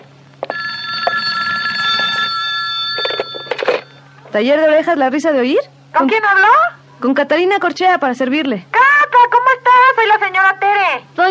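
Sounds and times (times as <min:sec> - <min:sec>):
telephone ringing: 0:00.5 - 0:04.1
speech: 0:04.3 - 0:08.8, 0:10.1 - 0:11.2.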